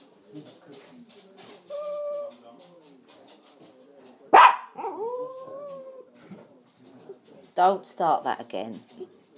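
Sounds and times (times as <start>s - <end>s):
speech: 0.3s - 0.6s, 7.6s - 9.2s
dog barking: 4.3s - 5.1s.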